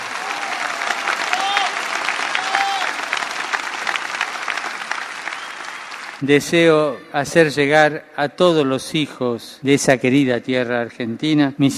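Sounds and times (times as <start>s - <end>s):
crowd applause at a religious festival for a patron saint: 0.0s - 6.2s
speech: 6.2s - 11.7s.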